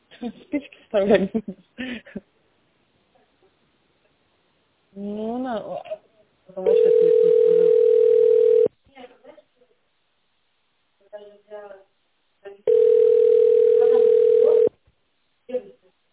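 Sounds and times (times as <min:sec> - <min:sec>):
speech: 0:00.2 - 0:02.3, 0:05.0 - 0:06.0, 0:06.6 - 0:07.6
ringback tone on a telephone line: 0:06.7 - 0:08.7, 0:12.7 - 0:14.7.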